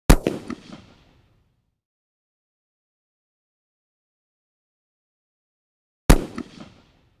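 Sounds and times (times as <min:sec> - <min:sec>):
.223 rifle blasts, medium: 0:00.1 - 0:01.0, 0:06.1 - 0:06.9.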